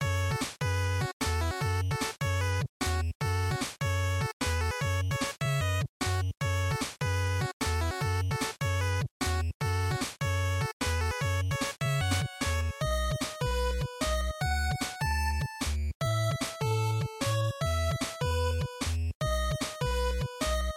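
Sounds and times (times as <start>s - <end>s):
game background music loop: 0.0s - 20.7s.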